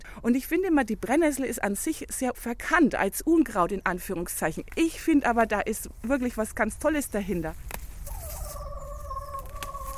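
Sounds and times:
speech: 0:00.2 - 0:07.8
chicken approaching with a drawn-out wavering call: 0:08.1 - 0:09.9.

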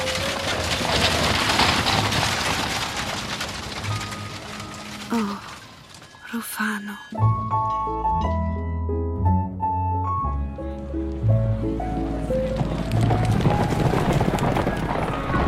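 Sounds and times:
carriage horse hooves clopping: 0:00.0 - 0:06.2, 0:11.2 - 0:15.4
horse-drawn carriage wheels rumbling: 0:00.0 - 0:06.3, 0:11.5 - 0:15.4
music: 0:06.2 - 0:14.2
speech: 0:06.6 - 0:08.3.

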